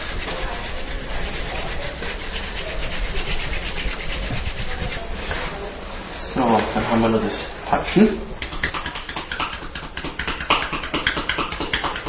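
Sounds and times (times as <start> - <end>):
two palms rubbing together skin against skin: 0.0 - 5.6, 8.4 - 12.0
speech: 6.9 - 8.3.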